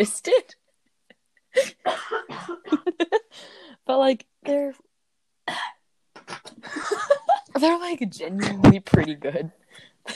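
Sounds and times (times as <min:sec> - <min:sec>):
speech: 0:00.0 - 0:00.6, 0:03.9 - 0:04.9, 0:07.6 - 0:10.1
person coughing: 0:01.6 - 0:03.0
laughter: 0:06.2 - 0:07.6.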